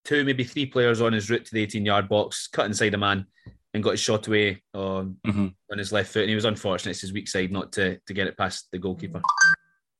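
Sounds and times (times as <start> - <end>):
speech: 0.1 - 9.6
phone notification ding: 9.2 - 9.7.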